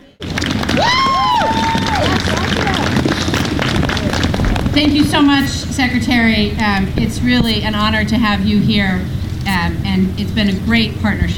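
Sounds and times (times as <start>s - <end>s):
large outdoor crowd in a parking lot murmuring and cheering: 0.0s - 11.3s
people whooping: 0.2s - 4.8s
dense chatter: 1.4s - 11.3s
speech: 4.8s - 11.3s.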